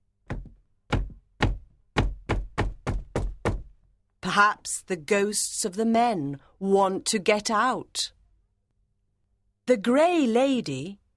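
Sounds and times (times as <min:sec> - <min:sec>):
heavy deep resonant knocking on a door: 0:00.3 - 0:03.8
speech: 0:04.3 - 0:08.2, 0:09.7 - 0:11.0.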